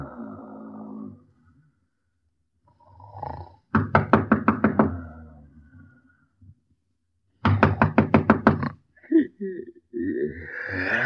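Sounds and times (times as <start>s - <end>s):
knocking on a door: 3.8s - 5.0s, 7.4s - 8.7s
faint voice murmuring: 9.0s - 11.0s.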